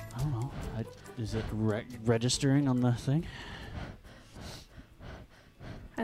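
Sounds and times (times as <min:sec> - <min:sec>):
breathing into a microphone: 0:00.0 - 0:01.8, 0:03.2 - 0:06.0
speech: 0:00.2 - 0:04.0.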